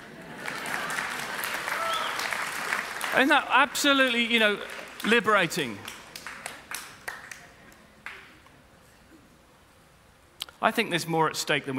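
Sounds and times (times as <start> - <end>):
audience applauding: 0.0 - 8.3
speech: 3.1 - 6.0, 10.6 - 11.7.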